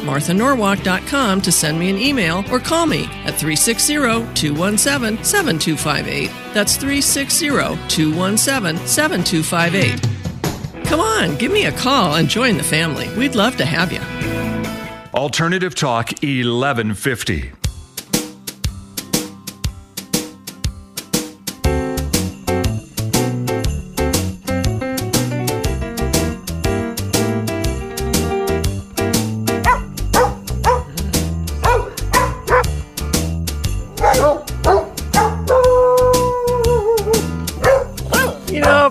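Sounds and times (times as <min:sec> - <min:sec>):
speech: 0:00.0 - 0:10.2, 0:10.9 - 0:14.5, 0:15.1 - 0:17.6
bouncy musical backing: 0:00.0 - 0:15.2, 0:17.6 - 0:38.8
dogs barking a Christmas melody: 0:29.6 - 0:32.8, 0:33.8 - 0:38.8.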